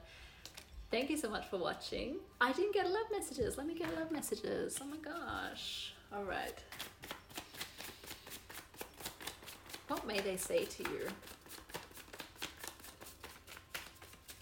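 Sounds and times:
tarot cards being shuffled in a quick papery riffle: 0.4 - 0.7, 4.7 - 5.7, 6.4 - 14.3
speech: 1.0 - 6.9, 9.9 - 11.3.

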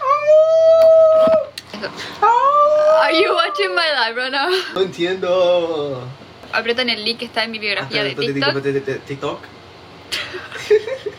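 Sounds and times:
person imitating a wolf howl: 0.0 - 1.6, 2.2 - 3.8
speech: 1.8 - 2.4, 3.1 - 11.0.

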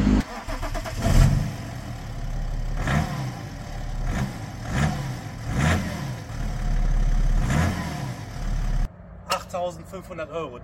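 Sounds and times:
BMW 7 Series F01 car engine turning over and catching: 0.0 - 9.5.

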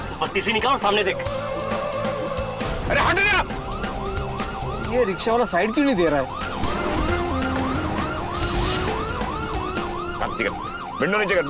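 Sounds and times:
low rumble of road traffic: 0.0 - 11.4
speech: 0.2 - 1.5, 2.9 - 3.6, 4.9 - 6.4, 10.3 - 11.4
police car siren wailing: 0.4 - 11.4.

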